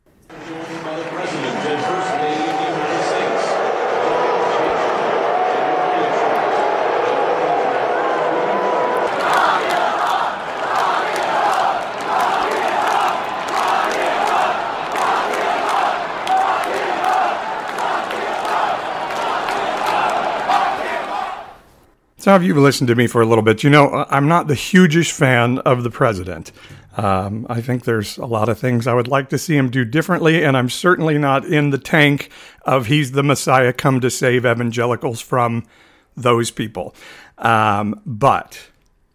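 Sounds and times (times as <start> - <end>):
stadium crowd roaring at a baseball game: 0.3 - 21.7
speech: 22.3 - 38.7.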